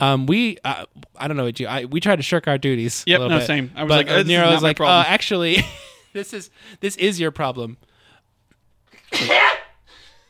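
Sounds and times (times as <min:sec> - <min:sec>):
speech: 0:00.0 - 0:07.9, 0:09.1 - 0:09.6
person sneezing: 0:08.9 - 0:10.2.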